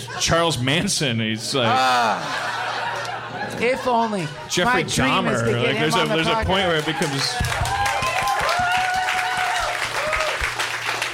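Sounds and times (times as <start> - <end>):
laughter: 0.0 - 7.5
speech: 0.1 - 2.7, 3.5 - 7.7
audience applauding: 5.8 - 11.1.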